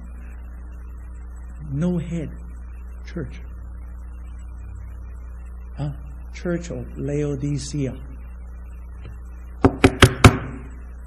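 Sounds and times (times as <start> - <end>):
speech: 1.7 - 2.4, 3.1 - 3.5, 5.8 - 8.1
firm knocking on a door: 9.6 - 10.5.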